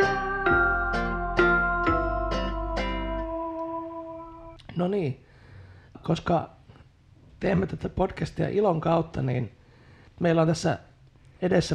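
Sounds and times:
short chiming podcast jingle of bell-like struck notes: 0:00.0 - 0:03.6
speech: 0:04.8 - 0:05.3, 0:06.0 - 0:06.6, 0:07.4 - 0:09.6, 0:10.2 - 0:11.7.

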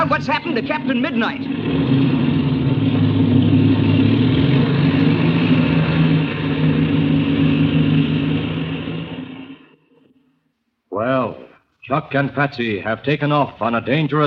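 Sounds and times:
speech: 0:00.0 - 0:02.2, 0:11.9 - 0:14.2
small airplane engine droning while taxiing: 0:00.0 - 0:10.3.

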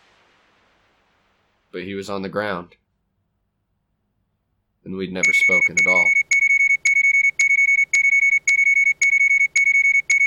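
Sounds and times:
speech: 0:01.7 - 0:02.8, 0:04.8 - 0:06.2
electronic low oxygen alarm beeping from suit speakers: 0:05.2 - 0:10.2.

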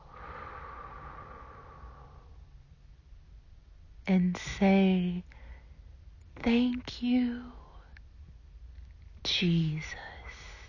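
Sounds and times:
deep slow breath: 0:00.0 - 0:02.6, 0:05.3 - 0:05.9
speech: 0:04.1 - 0:05.4, 0:06.4 - 0:07.6, 0:09.2 - 0:10.1.

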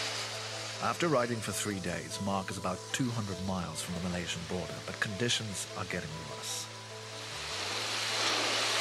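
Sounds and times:
heavy monsoon rain in Thailand pouring down: 0:00.0 - 0:05.2, 0:07.0 - 0:08.7
speech: 0:00.8 - 0:06.8.

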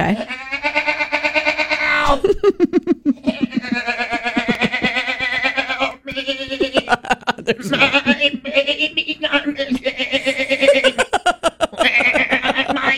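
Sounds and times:
goat crying out for its lost baby goats: 0:00.0 - 0:02.2, 0:03.2 - 0:06.9, 0:07.7 - 0:11.0, 0:11.8 - 0:12.9
speech: 0:00.1 - 0:00.4
laughter: 0:02.0 - 0:12.9.

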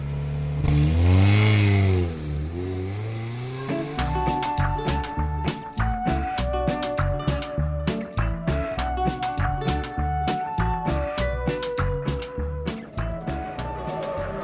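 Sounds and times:
car engine revving: 0:00.0 - 0:06.4, 0:12.7 - 0:14.4
steady rhythmic music track with a regular beat: 0:03.7 - 0:14.4.

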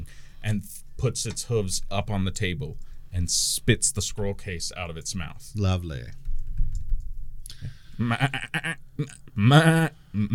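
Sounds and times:
speech: 0:00.4 - 0:06.2, 0:07.6 - 0:10.3
sheep bleating: 0:08.0 - 0:08.8.

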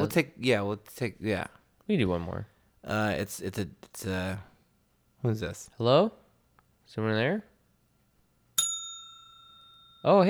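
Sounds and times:
speech: 0:00.0 - 0:04.5, 0:05.2 - 0:06.2, 0:06.9 - 0:07.5, 0:10.0 - 0:10.2
faint hum: 0:00.0 - 0:10.2
desk bell ringing: 0:08.6 - 0:10.2.

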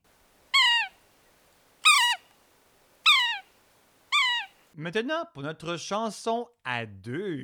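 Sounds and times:
bird calling with downward-slurred notes: 0:00.0 - 0:04.8
speech: 0:04.8 - 0:07.4.

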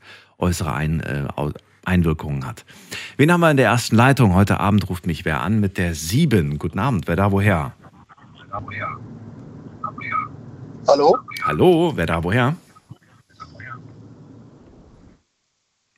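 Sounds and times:
speech: 0:00.4 - 0:07.8, 0:08.5 - 0:09.1, 0:10.9 - 0:12.6
rumble of a car driving over a phone line: 0:08.4 - 0:15.2.

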